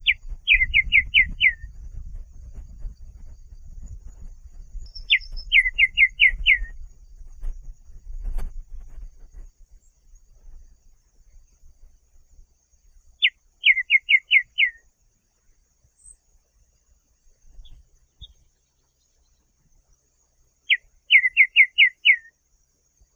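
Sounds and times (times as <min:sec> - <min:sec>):
White-winged becard Pachyramphus polychopterus calling: 0:00.0 - 0:01.7, 0:04.9 - 0:06.7, 0:13.2 - 0:14.8, 0:20.7 - 0:22.3.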